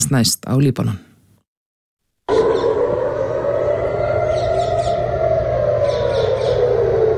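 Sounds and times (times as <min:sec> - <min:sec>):
speech: 0:00.0 - 0:01.1
air raid sirens wailing in Israel during an Iranian attack: 0:02.3 - 0:07.1.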